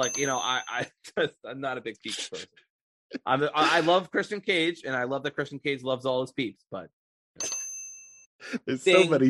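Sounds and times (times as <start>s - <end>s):
single bright bell ringing: 0.0s - 0.8s, 7.4s - 8.3s
speech: 0.0s - 7.6s, 8.4s - 9.2s.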